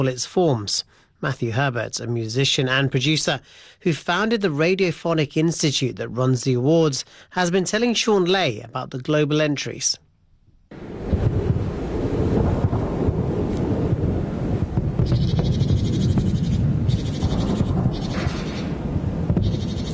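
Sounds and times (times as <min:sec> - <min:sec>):
speech: 0:00.0 - 0:10.0
wind blowing through a private garden outside Tehran, buffeting the microphone: 0:10.7 - 0:19.9.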